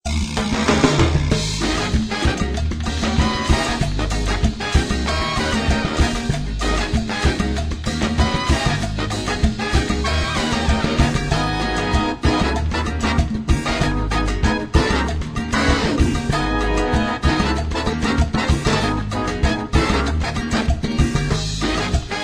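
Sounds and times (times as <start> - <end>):
cumbia game music: 0.0 - 22.2.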